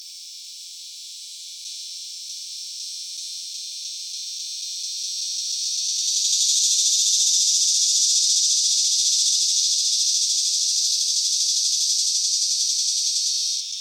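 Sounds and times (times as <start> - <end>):
Megatibicen figuratus cicadas, filtered: 5.1 - 13.7.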